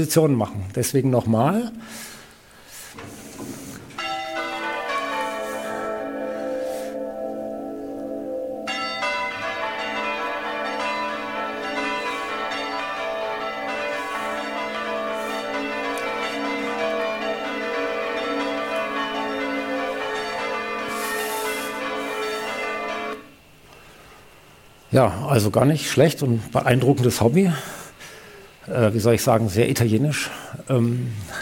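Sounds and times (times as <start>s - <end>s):
speech: 0.0s - 2.1s, 25.0s - 27.8s, 28.7s - 31.4s
church bells ringing in a continuous musical sequence: 1.1s - 2.3s, 3.9s - 23.5s, 25.4s - 27.8s.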